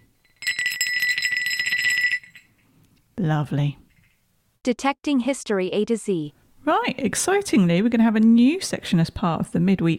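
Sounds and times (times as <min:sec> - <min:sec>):
small crotal bell shaken: 0:00.0 - 0:02.6
speech: 0:03.2 - 0:03.8, 0:04.6 - 0:09.9.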